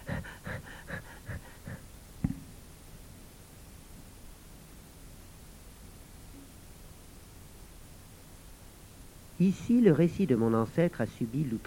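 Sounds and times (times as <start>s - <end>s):
person panting out of breath: 0.0s - 1.9s
speech: 9.4s - 11.6s.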